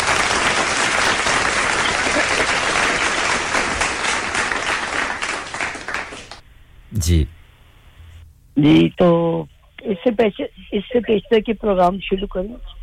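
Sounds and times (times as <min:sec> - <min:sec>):
audience applauding to greet a guest: 0:00.0 - 0:06.4
speech: 0:07.0 - 0:07.4, 0:08.6 - 0:12.8.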